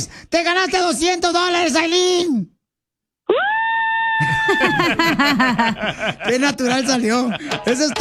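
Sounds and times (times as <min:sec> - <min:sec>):
speech: 0:00.0 - 0:02.5, 0:03.3 - 0:03.6, 0:04.2 - 0:07.9
woman screaming in excitement: 0:03.3 - 0:05.0
people laughing: 0:04.2 - 0:07.9.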